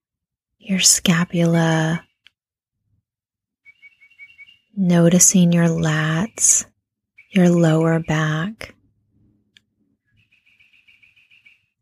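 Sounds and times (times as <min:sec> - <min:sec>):
speech: 0:00.6 - 0:02.1, 0:04.8 - 0:06.7, 0:07.3 - 0:08.8
springtime birds singing outside: 0:03.6 - 0:08.7, 0:10.0 - 0:11.8.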